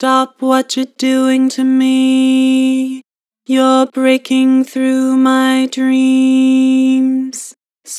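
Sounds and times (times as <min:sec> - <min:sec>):
flat synthesized vocals: 0:00.0 - 0:07.9.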